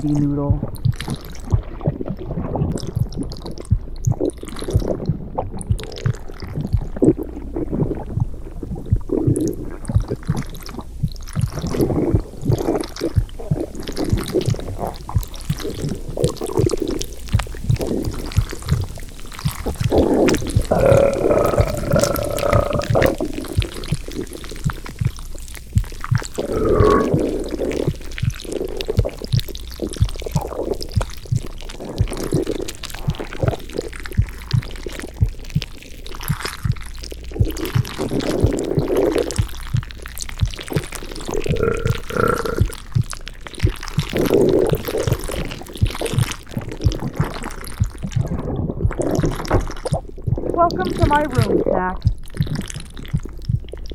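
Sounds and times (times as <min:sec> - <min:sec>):
speech: 0:00.0 - 0:01.2
stomach gurgling during digestion: 0:00.0 - 0:53.9.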